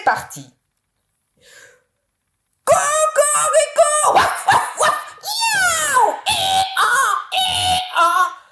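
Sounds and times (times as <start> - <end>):
speech: 0.0 - 0.6
audience imitating a cat, a dog, a donkey and a rooster: 2.7 - 8.5.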